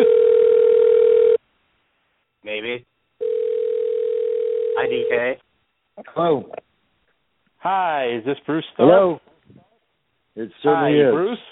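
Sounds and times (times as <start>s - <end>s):
electronic telephone ring tone on outgoing call: 0.0s - 1.4s, 3.2s - 5.3s
speech: 2.7s - 2.9s, 4.9s - 5.4s, 6.0s - 6.7s, 7.6s - 9.6s, 10.4s - 11.5s.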